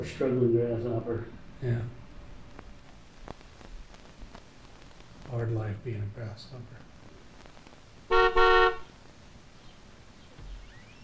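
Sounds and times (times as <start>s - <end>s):
speech: 0.0s - 2.0s, 5.3s - 6.8s
faint low rumble: 0.0s - 11.0s
car horn honking: 8.1s - 8.9s.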